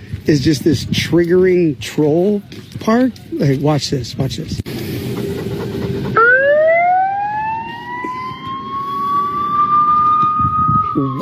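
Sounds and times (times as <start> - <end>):
speech: 0.3 - 4.7
emergency siren in a children's playground: 5.0 - 11.2.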